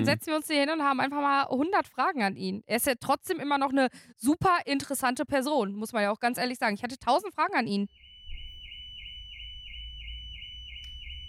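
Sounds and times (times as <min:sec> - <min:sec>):
speech: 0:00.0 - 0:08.0
car alarm siren wailing inside a hall: 0:07.9 - 0:11.2.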